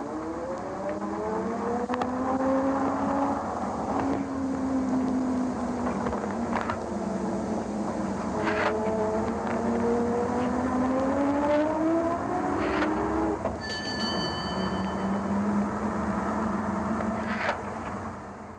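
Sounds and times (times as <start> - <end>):
red London double-decker bus engine drone: 0.0 - 18.5
short bell-like ding: 13.6 - 15.6.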